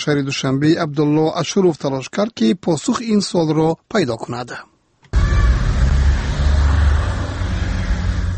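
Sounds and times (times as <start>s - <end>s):
speech: 0.0s - 4.7s
government officials' cars driving out: 5.2s - 8.3s.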